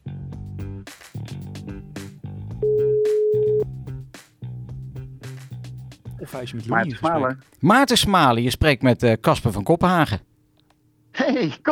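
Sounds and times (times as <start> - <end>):
telephone ringing tone while calling someone: 2.6 - 3.6
speech: 6.3 - 10.3, 11.2 - 11.7.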